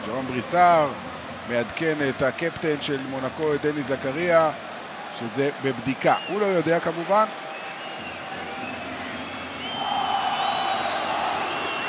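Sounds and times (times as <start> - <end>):
speech: 0.1 - 7.4
stadium crowd roar at a football match: 0.2 - 11.8
stadium crowd of football supporters whistling in disapproval: 4.9 - 11.8.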